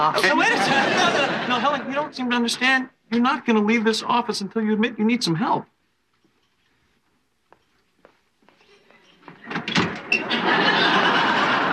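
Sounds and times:
speech: 0:00.0 - 0:05.7
laughter: 0:00.1 - 0:02.1, 0:10.1 - 0:11.7
door closing: 0:09.0 - 0:10.3.

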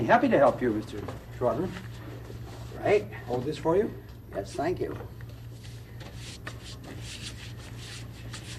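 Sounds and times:
speech: 0:00.0 - 0:02.0, 0:02.8 - 0:05.2
brush spreading paste over flock wallpaper: 0:05.6 - 0:08.5.

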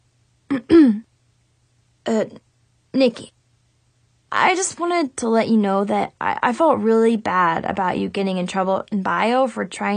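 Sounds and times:
person clearing throat: 0:00.5 - 0:01.1
speech: 0:00.7 - 0:01.0, 0:02.1 - 0:03.4, 0:04.3 - 0:09.9.

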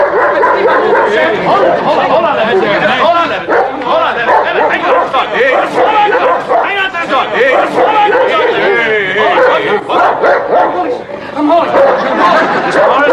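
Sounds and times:
dog barking and yipping: 0:00.0 - 0:01.7, 0:03.5 - 0:06.8, 0:07.4 - 0:11.0, 0:11.8 - 0:12.1, 0:12.7 - 0:13.1
crowd chatter: 0:00.0 - 0:13.1
laughter: 0:00.0 - 0:13.1.

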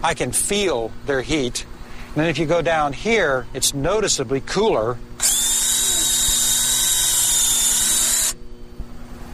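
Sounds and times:
speech: 0:00.0 - 0:05.5
high-pitched dental drill boring into a beehive: 0:05.2 - 0:08.4.

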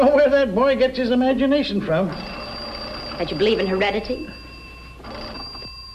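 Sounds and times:
speech: 0:00.0 - 0:02.4, 0:03.2 - 0:04.4
telephone bell ringing: 0:02.1 - 0:05.9.

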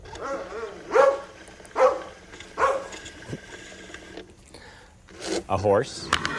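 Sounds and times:
pull-string toy imitating a dog barking: 0:00.2 - 0:02.9
speech: 0:05.5 - 0:06.3.

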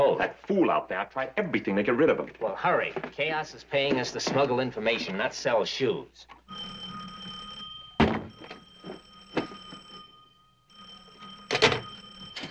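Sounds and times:
speech: 0:00.2 - 0:06.9
steady electronic telephone ring: 0:06.3 - 0:12.4.

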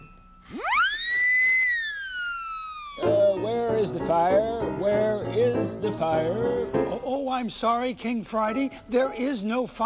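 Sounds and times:
siren whistle blown: 0:00.4 - 0:03.2
speech: 0:03.8 - 0:09.8.

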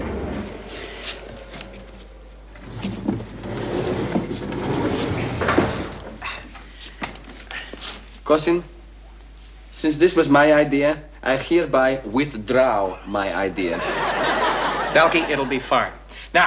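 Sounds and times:
elevator doors forced apart with metallic scraping and grinding: 0:00.0 - 0:06.0
speech: 0:08.3 - 0:08.7, 0:09.8 - 0:14.2, 0:14.9 - 0:16.4
laughter: 0:13.5 - 0:15.8.

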